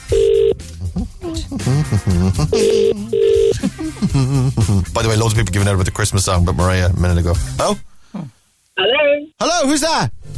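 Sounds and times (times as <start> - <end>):
outgoing phone call ringing tone: 0.1 - 0.6, 2.6 - 3.6, 8.8 - 9.3
speech: 1.4 - 8.2, 9.4 - 10.2.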